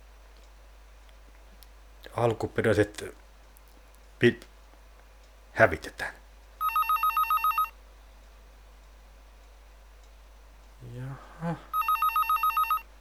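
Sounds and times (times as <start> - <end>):
speech: 2.2 - 3.2, 4.2 - 4.5, 5.6 - 6.2, 11.4 - 11.7
telephone bell ringing: 6.6 - 7.7, 11.7 - 12.9.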